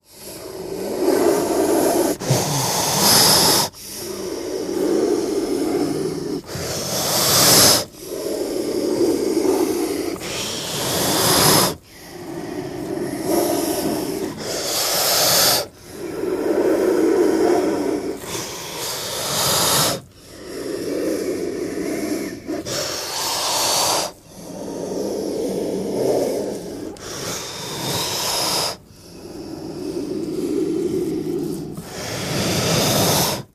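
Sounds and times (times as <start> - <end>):
cobra hissing: 0.0 - 33.5.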